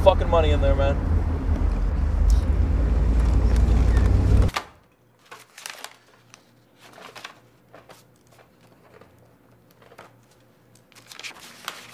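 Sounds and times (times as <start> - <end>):
speech: 0.0 - 1.2
heavy low rumbling roar: 0.0 - 4.5
sales report papers shuffling: 1.6 - 11.9
rummaging through a woman's handbag with rustling, crinkling and clicks: 5.2 - 11.9.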